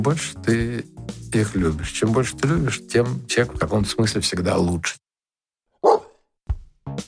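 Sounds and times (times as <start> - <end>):
speech: 0.0 - 5.0
dog barking: 5.8 - 6.2.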